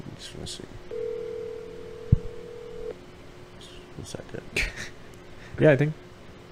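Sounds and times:
speech: 0.2s - 0.8s, 4.0s - 5.0s, 5.6s - 6.0s
phone line's steady tone: 0.9s - 2.9s.

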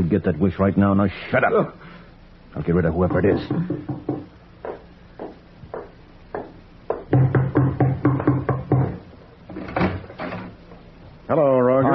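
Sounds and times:
speech: 0.0s - 1.8s, 2.6s - 4.2s
knocking on a door: 3.0s - 9.1s.

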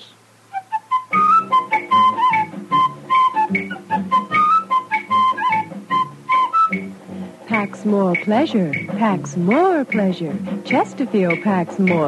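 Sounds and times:
man whistling a jingle tune: 0.5s - 6.9s
steady rhythmic strummed chords: 1.0s - 12.0s
speech: 7.8s - 12.0s.

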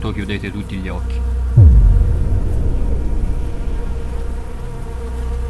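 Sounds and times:
speech: 0.1s - 1.4s
steady low droning buzz: 1.6s - 5.4s.

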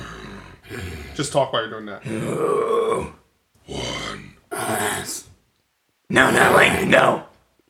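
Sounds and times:
person attempting a harsh guttural death metal growl: 0.0s - 1.4s, 2.0s - 5.3s, 6.1s - 7.2s
speech: 0.7s - 3.9s, 6.1s - 7.2s.

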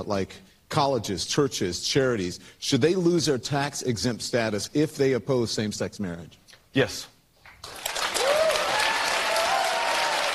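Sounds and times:
speech: 0.0s - 7.8s
large crowd applause and cheering: 7.5s - 10.3s
whoops: 8.1s - 10.3s.

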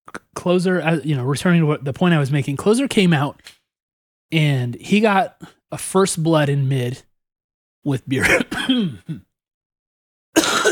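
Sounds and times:
speech: 0.4s - 3.6s, 4.3s - 7.1s, 7.8s - 9.3s
short cough: 8.2s - 9.3s, 10.4s - 10.7s
throat clearing: 8.2s - 9.3s, 10.4s - 10.7s.

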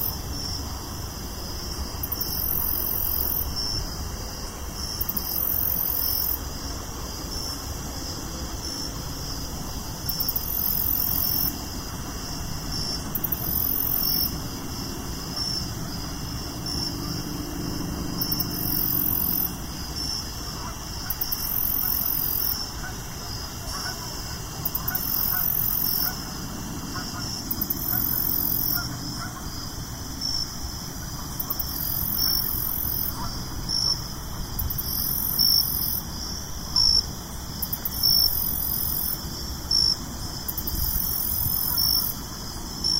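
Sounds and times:
crickets chirping on a suburban evening: 0.0s - 42.9s
low rumble of light traffic: 0.0s - 42.9s.

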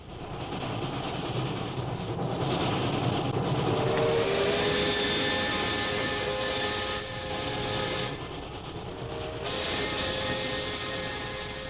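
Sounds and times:
sharp rail clicks: 0.0s - 11.6s
train bound for Calcutta rumbling inside a carriage: 0.0s - 11.6s
faint metallic whine: 3.5s - 11.6s.

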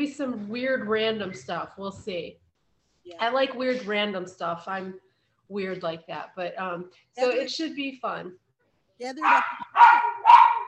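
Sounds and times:
speech: 0.0s - 2.4s, 3.1s - 8.4s, 9.0s - 10.4s
dog barking: 9.2s - 10.6s.

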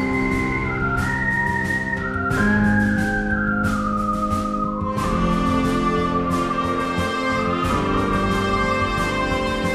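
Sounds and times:
person whistling a short tune: 0.0s - 6.7s
sustained full-bodied musical accompaniment with sharp accents: 0.0s - 9.7s.

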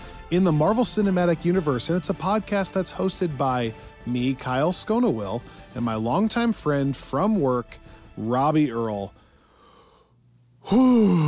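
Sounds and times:
speech: 0.3s - 9.2s, 10.6s - 11.2s
person taking a deep breath and exhaling in a groaning sigh: 9.6s - 11.2s.

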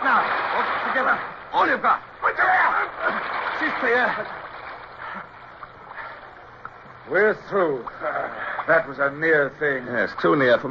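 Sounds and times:
splashes and small slaps against a rowboat hull: 0.0s - 7.0s
steady rushing water pouring around a rowboat caught on a rock: 0.0s - 9.7s
speech: 1.0s - 2.1s, 3.6s - 4.4s, 7.1s - 10.6s.

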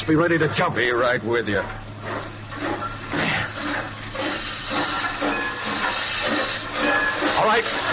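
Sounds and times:
speech: 0.0s - 2.8s, 7.5s - 7.9s
steam locomotive hissing and venting steam: 2.0s - 7.9s.

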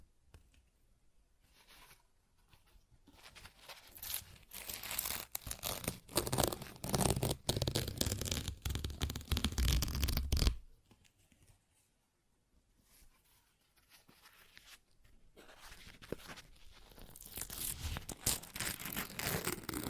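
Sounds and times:
paper torn and ripped: 3.9s - 10.6s, 17.2s - 19.8s.

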